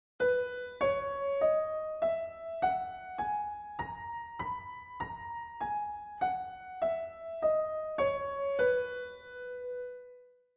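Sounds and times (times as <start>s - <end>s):
piano playing a B scale: 0.2s - 10.2s.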